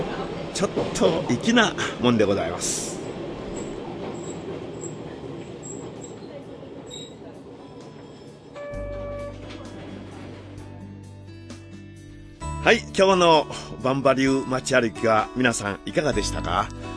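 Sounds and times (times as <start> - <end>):
vintage streetcar rumbling along rails: 0.0 - 11.0
speech: 0.6 - 2.9, 12.7 - 16.9
thin metallic squeal of streetcar wheels: 6.9 - 9.4.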